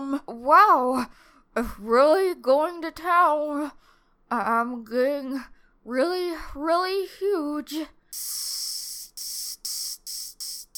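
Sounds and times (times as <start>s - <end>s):
speech: 0.1s - 8.8s
pump hissing as it inflates: 8.2s - 10.7s.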